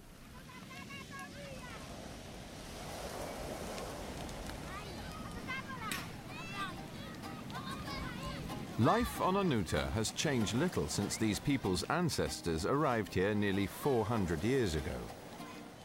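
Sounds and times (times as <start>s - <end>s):
gusty wind on a small remote island: 0.0s - 9.2s
ocean waves washing onto the shore of a small remote island: 0.0s - 15.8s
speech: 8.8s - 15.2s.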